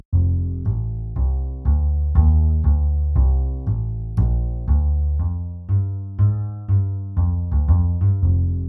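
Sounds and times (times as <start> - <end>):
double bass: 0.0 - 8.6.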